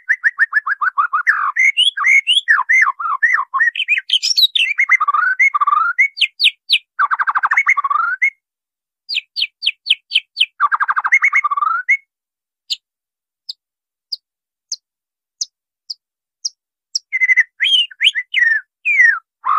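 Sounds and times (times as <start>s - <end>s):
white-rumped shama song with whistled phrases and chattering trills: 0.0s - 8.4s, 9.1s - 12.1s, 17.0s - 19.3s.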